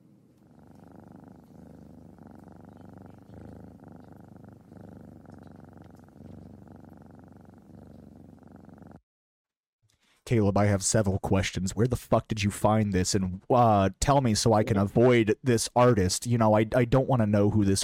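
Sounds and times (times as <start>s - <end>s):
small cat purring: 0.0s - 9.0s
speech: 10.3s - 17.8s.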